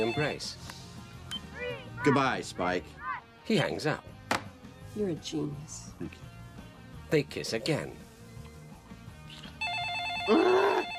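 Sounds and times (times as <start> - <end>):
telephone ringing with electronic trill: 0.0 - 0.4, 9.6 - 10.9
speech: 0.0 - 0.8, 2.0 - 4.1, 5.0 - 6.3, 7.1 - 8.0.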